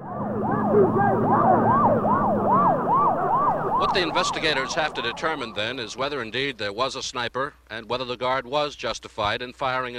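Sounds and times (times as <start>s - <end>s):
ambulance siren wailing: 0.0s - 6.4s
low ambulance engine rumble: 0.0s - 6.6s
speech: 0.7s - 1.8s, 3.8s - 9.9s.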